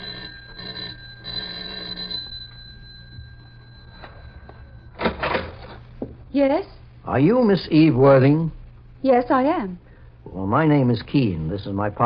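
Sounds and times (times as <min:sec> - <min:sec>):
studio apartment doorbell electric buzz: 0:00.0 - 0:05.9
speech: 0:06.3 - 0:12.0.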